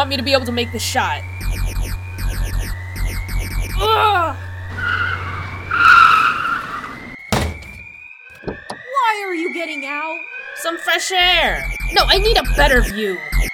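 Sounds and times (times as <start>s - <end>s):
speech: 0.0s - 1.6s, 9.1s - 13.3s
car tires screeching while skidding to a stop: 0.1s - 7.2s
sharp thud: 7.3s - 8.7s.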